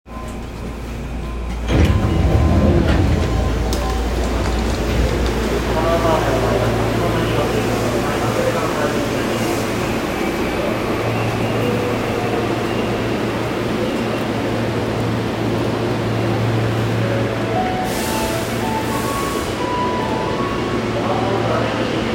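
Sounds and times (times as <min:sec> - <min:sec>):
train sounds at a level crossing east of Takadanobaba on the Seibu Shinjuku Line: 0:00.1 - 0:22.1.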